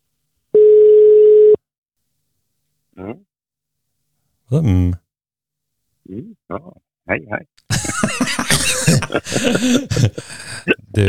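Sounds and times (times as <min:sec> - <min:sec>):
phone call ringback tone: 0:00.6 - 0:01.6
speech: 0:04.5 - 0:05.0, 0:06.1 - 0:07.8, 0:08.9 - 0:11.0
laughter: 0:07.7 - 0:11.0.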